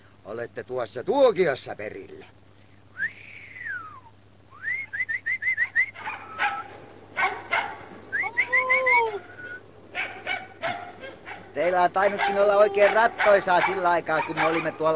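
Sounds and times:
speech: 0:00.3 - 0:02.4, 0:11.7 - 0:14.9
excited sled dogs barking and yelping: 0:05.6 - 0:14.9.

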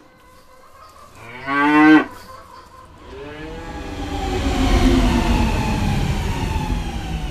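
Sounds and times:
cow mooing: 0:01.2 - 0:02.2
low steady rumble: 0:02.8 - 0:07.2.

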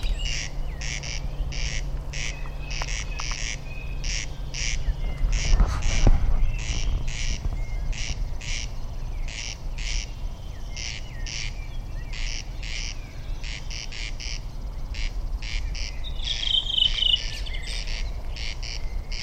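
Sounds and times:
low background rumble: 0:00.0 - 0:19.2
several corncrakes giving rasping crex-crex calls in summer: 0:00.0 - 0:19.2.

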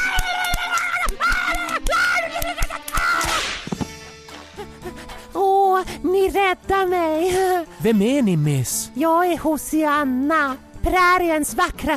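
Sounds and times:
woman wailing and screaming: 0:00.0 - 0:03.5
sharp face slaps: 0:00.2 - 0:04.0
speech: 0:06.0 - 0:11.9.

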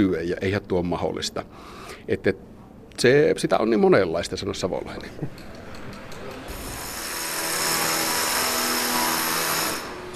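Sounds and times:
speech: 0:00.0 - 0:05.6
power drill rumbling indoors: 0:06.5 - 0:10.1.

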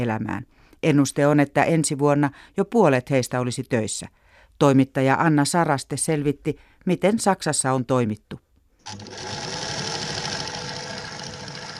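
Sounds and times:
speech: 0:00.0 - 0:09.6
several sewing machines running in a workshop: 0:08.9 - 0:11.7.

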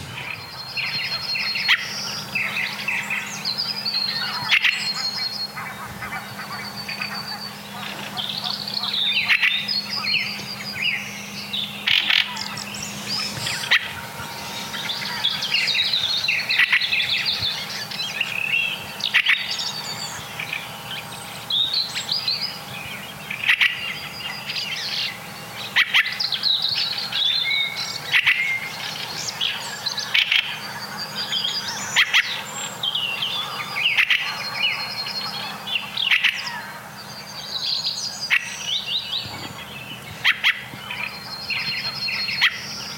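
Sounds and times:
fieldfare giving harsh chattering calls: 0:00.0 - 0:42.9
steady low outdoor hum: 0:00.0 - 0:42.9.

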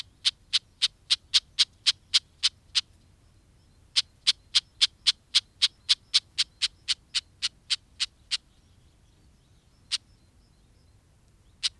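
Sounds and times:
Red-backed Shrike harsh clicking alarm calls: 0:00.0 - 0:03.0, 0:04.0 - 0:08.5, 0:11.4 - 0:11.7.

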